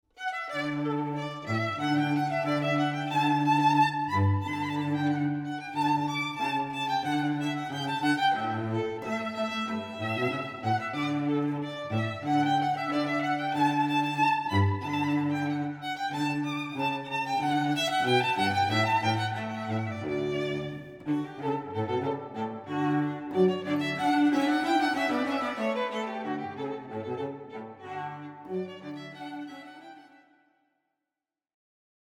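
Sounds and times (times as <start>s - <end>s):
violin and cello duo: 0.2s - 30.3s.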